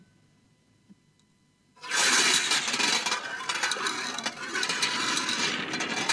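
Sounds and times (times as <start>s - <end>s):
marbles rolling on a metal plate: 1.9s - 6.1s.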